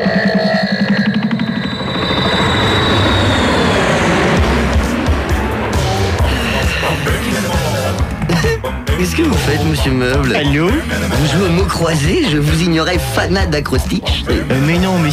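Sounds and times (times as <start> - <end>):
airplane engine warming up: 0.7 - 8.9
speech: 9.1 - 15.1.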